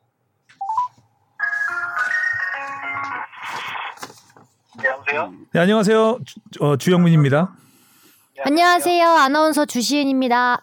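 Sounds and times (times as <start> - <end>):
electronic phone ringing and dial-tone notes: 0.6 - 3.5
speech: 5.1 - 7.6, 8.5 - 10.6.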